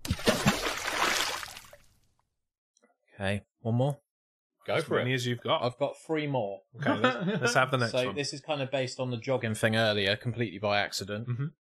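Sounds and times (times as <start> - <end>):
splash of something dropped into water: 0.0 - 1.9
speech: 3.2 - 4.0, 4.7 - 11.5
laughter: 6.8 - 8.1.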